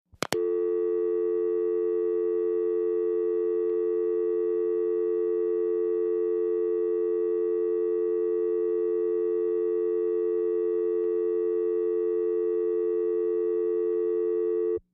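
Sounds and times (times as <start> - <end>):
filtered telephone click: 0.2 - 0.5
filtered telephone dial tone: 0.2 - 14.8.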